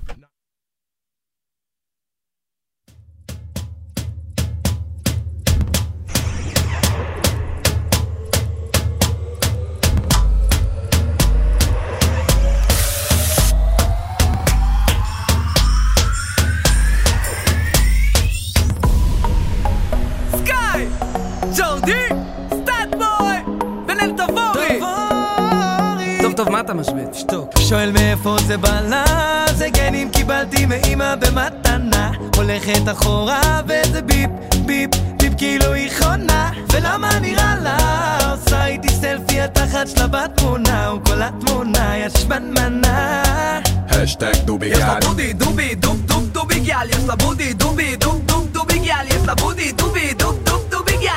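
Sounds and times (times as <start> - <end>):
pop song intro with thumping beat and heavy bass: 3.3 - 51.1
rising synth sweep: 6.1 - 26.2
speech: 27.2 - 51.1.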